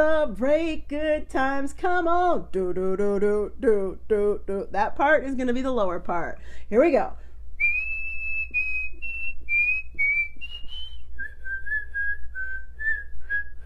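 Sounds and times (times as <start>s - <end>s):
speech: 0.0s - 7.2s
person whistling a tune: 7.6s - 13.6s.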